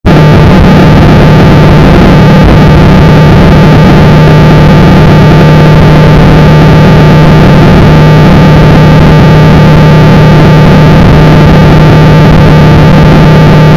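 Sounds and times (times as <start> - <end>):
plane noise: 0.0 - 13.7.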